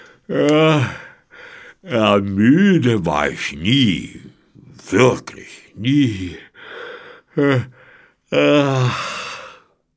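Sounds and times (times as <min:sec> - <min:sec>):
speech: 0:00.3 - 0:01.0, 0:01.8 - 0:06.5, 0:07.4 - 0:09.2
older man yawning loudly: 0:08.3 - 0:09.7.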